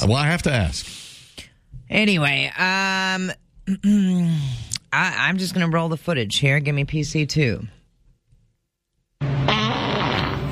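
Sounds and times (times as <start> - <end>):
speech: 0.0 - 1.0, 1.9 - 7.8
long buzzy sputtering fart: 9.2 - 10.5.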